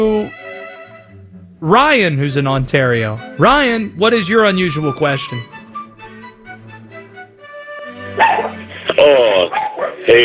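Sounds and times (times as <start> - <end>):
speech: 1.6 - 5.5
dog barking: 8.2 - 8.6, 9.5 - 10.1
dog whining: 8.2 - 8.6.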